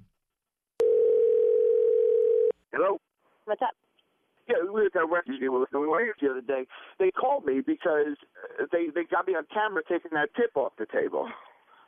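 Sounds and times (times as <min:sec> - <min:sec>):
outgoing phone call ringing tone: 0:00.8 - 0:02.6
speech: 0:03.5 - 0:03.8, 0:04.5 - 0:11.5.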